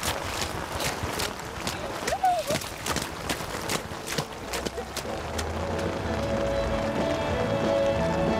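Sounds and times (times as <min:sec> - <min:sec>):
running footsteps splashing through shallow puddles: 0:00.0 - 0:08.3.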